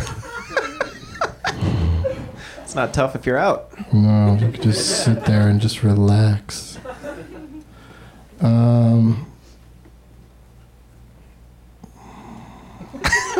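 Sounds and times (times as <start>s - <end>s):
laughter: 0.0s - 3.1s, 4.1s - 5.7s, 6.7s - 7.7s, 12.9s - 13.3s
person breathing audibly in the room: 1.5s - 2.7s, 7.7s - 8.3s, 11.8s - 13.0s
speech: 2.8s - 6.9s, 8.4s - 9.3s.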